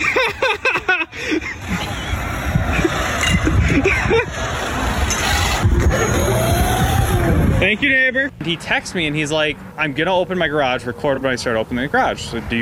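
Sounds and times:
people laughing and chuckling: 0.0 - 4.7
small remote control car with electric motor whine: 1.4 - 8.0
speech: 7.7 - 12.6.

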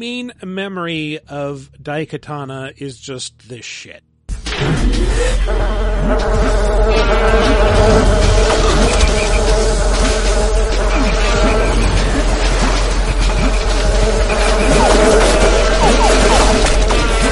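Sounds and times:
speech: 0.0 - 8.2
video game dragonfly enemies buzzing with droning wings: 5.4 - 17.2.

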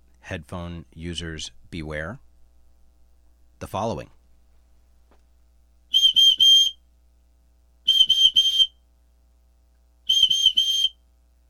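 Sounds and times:
speech: 0.3 - 2.3, 3.6 - 4.2
loud shrill emergency whistle blasts: 5.9 - 6.8, 7.9 - 8.8, 10.1 - 11.0.

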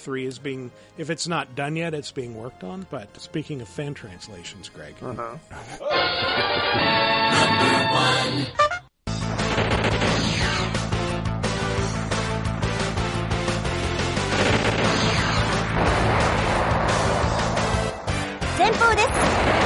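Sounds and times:
speech: 0.0 - 8.7
driving 80s-style rock music from a video game: 5.9 - 19.6
video game explosions and blasts: 14.3 - 19.6.

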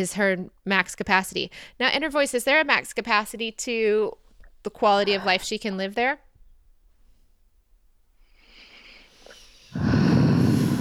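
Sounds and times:
speech: 0.0 - 6.2
person exhaling forcefully: 8.8 - 10.8.

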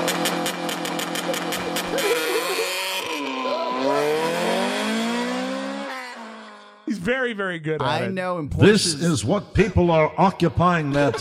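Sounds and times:
car engine held on launch control: 0.0 - 6.8
speech: 7.3 - 11.1.

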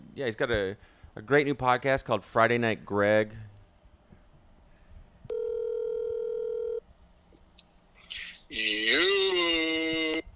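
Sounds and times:
faint noise: 0.0 - 10.3
speech: 0.2 - 3.5, 8.5 - 9.2
telephone dial tone while placing call: 5.3 - 6.8.

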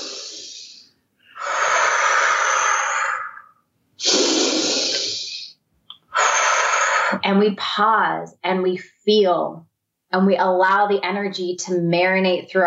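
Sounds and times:
person sniffing: 0.0 - 7.2
slow integrative breathing in a breathwork demonstration: 0.0 - 7.2
speech: 7.3 - 12.6.

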